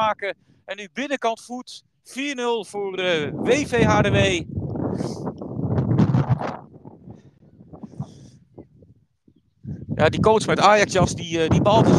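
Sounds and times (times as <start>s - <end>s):
speech: 0.0s - 5.3s, 10.0s - 11.9s
gusty wind buffeting the microphone: 3.0s - 11.9s.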